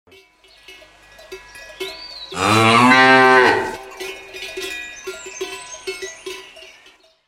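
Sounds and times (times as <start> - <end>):
animals mooing: 2.3 - 4.2.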